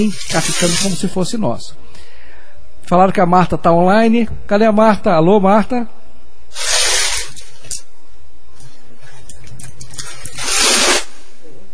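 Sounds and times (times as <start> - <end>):
crackly call line noise: 0.0 - 1.1, 6.5 - 7.8, 8.6 - 11.3
speech: 0.0 - 2.1, 2.9 - 6.6
rushing spraying water over a call line: 6.6 - 7.4, 10.2 - 11.1.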